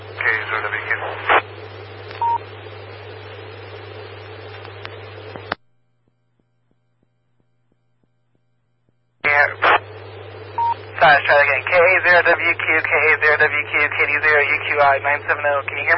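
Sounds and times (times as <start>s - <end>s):
loud hissing radio static: 0.0s - 5.6s, 9.2s - 15.9s
low hum: 0.0s - 15.9s
telephone-style dialing tones over a radio channel: 2.2s - 2.4s
speech: 11.2s - 15.9s.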